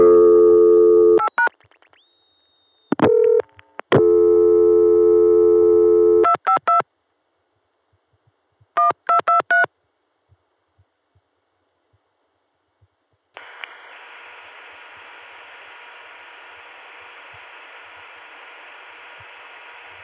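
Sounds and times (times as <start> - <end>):
crossbar PBX telephone ringback tone in the Chicago sector via Watts line: 0.0 - 1.2, 3.1 - 3.4, 4.0 - 6.3
quick electronic dialing beeps: 0.0 - 3.4, 8.8 - 9.7.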